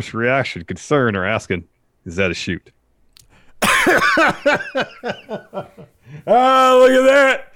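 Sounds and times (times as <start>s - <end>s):
speech: 0.0s - 2.8s, 3.8s - 7.5s
person coughing in a harsh raspy coughing fit: 3.6s - 4.4s
laughter: 3.6s - 6.3s.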